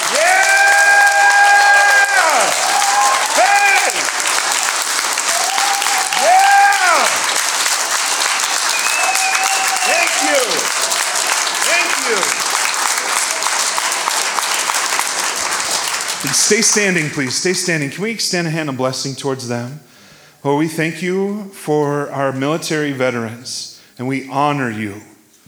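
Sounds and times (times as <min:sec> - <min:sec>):
rising whoops: 0:00.0 - 0:07.4, 0:08.2 - 0:12.4
large crowd applauding: 0:00.0 - 0:17.8
sharp whistles: 0:08.4 - 0:10.6
speech: 0:16.5 - 0:25.1.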